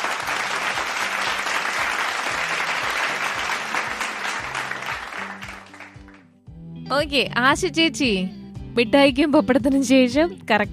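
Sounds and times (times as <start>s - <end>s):
audience applause: 0.0s - 6.2s
speech: 6.9s - 10.7s.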